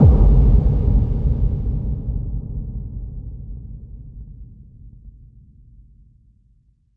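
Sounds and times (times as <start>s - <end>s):
low impact: 0.0s - 4.0s.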